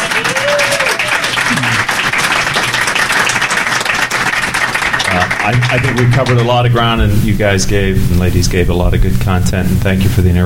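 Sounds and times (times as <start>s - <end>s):
audience applause for a panel: 0.0s - 7.0s
speech: 5.5s - 10.4s.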